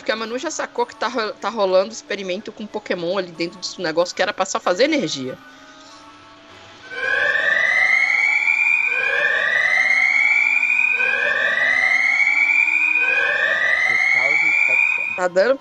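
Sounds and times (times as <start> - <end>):
speech: 0.1 - 5.6, 15.2 - 15.5
power plant alarm wailing in rising sweeps: 6.8 - 15.5.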